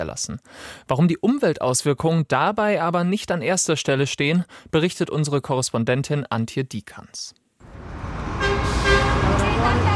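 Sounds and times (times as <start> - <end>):
speech: 0.0 - 7.4, 9.6 - 9.9
rush-hour traffic on a busy central square with four lanes each way: 7.6 - 9.9
loud car horn honking: 8.3 - 9.9.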